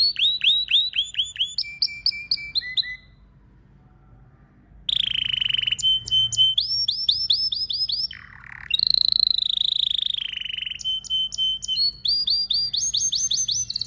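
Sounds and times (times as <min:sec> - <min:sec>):
canary song: 0:00.0 - 0:03.6, 0:04.8 - 0:13.8.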